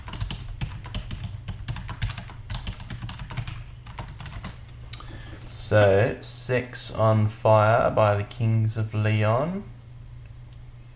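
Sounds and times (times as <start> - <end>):
rapid typing on a computer keyboard entering a search: 0.0 - 4.6
speech: 5.7 - 9.8.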